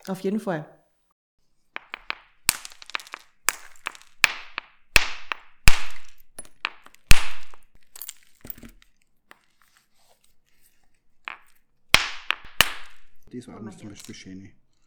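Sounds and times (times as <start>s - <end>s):
speech: 0.0s - 0.8s, 13.4s - 14.6s
flint being knapped into shards for a knife: 1.8s - 8.2s, 11.3s - 13.3s
flint shards snapping: 2.5s - 8.7s, 12.0s - 13.3s.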